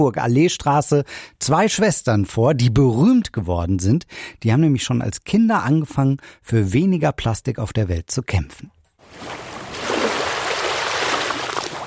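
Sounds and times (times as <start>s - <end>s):
speech: 0.0s - 9.4s
sea waves running up a sandy beach: 9.1s - 11.8s.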